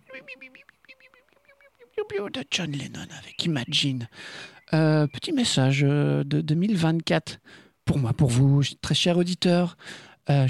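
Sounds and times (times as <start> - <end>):
small birds chirping: 0.0 - 6.0
speech: 0.2 - 0.9, 2.0 - 10.4.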